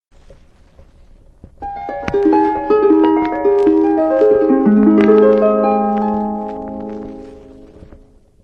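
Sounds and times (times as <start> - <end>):
harp playing: 1.6 - 8.1.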